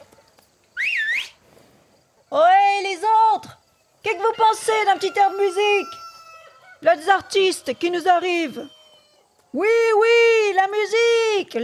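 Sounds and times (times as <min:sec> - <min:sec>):
young man's loud piercing two-finger whistle toward wedding guests: 0:00.8 - 0:01.4
speech: 0:03.4 - 0:06.0, 0:06.8 - 0:08.8, 0:09.5 - 0:11.6.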